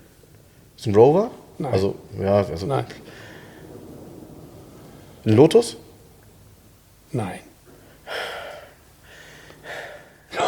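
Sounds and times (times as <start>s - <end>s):
speech: 0.8s - 3.2s, 5.2s - 5.8s, 7.1s - 7.5s
man breathing heavily and laboriously: 8.0s - 10.4s.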